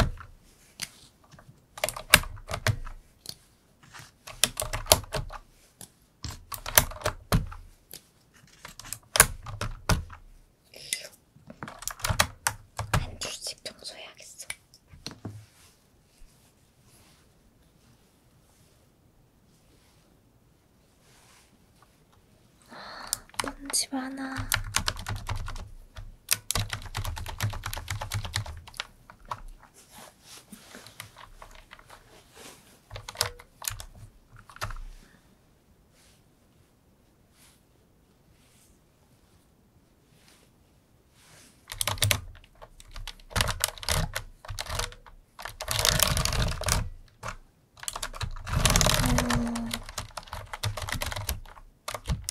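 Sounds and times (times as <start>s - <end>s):
computer keyboard typing: 0.0s - 0.3s, 1.8s - 3.0s, 4.2s - 5.4s, 6.2s - 7.6s, 8.5s - 10.2s, 11.6s - 13.3s, 23.1s - 29.6s, 30.9s - 32.0s, 32.9s - 34.8s, 41.7s - 52.2s
speech: 24.0s - 24.5s.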